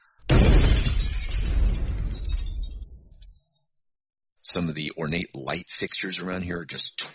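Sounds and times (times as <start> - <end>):
window glass shattering: 0.1 - 3.8
bright tinkling glass debris: 0.3 - 3.8
speech: 4.5 - 7.1.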